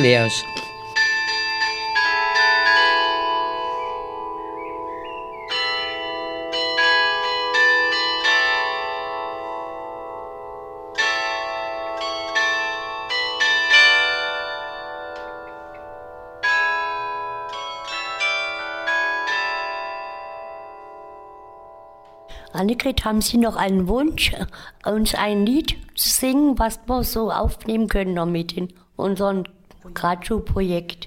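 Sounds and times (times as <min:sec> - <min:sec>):
speech: 0:00.0 - 0:00.6, 0:22.6 - 0:31.0
carillon bells ringing a bright tuneful melody: 0:00.0 - 0:22.8.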